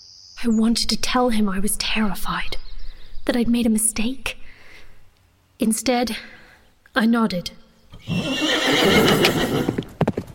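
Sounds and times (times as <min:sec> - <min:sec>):
speech: 0:00.4 - 0:02.6, 0:03.3 - 0:04.4, 0:05.6 - 0:06.4, 0:07.0 - 0:09.8
horse neighing while being ridden off in the dark early morning: 0:07.9 - 0:09.9
horse hoof clops: 0:09.0 - 0:10.3.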